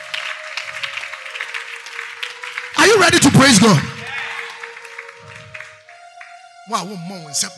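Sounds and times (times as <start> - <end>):
church audience clapping in praise: 0.0 - 6.5
speech: 2.9 - 3.9, 6.7 - 7.5.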